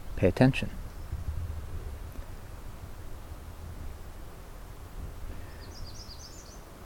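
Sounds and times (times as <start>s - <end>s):
steady broadband hiss: 0.0s - 6.8s
speech: 0.2s - 0.8s
faint bird chirps: 5.3s - 6.7s.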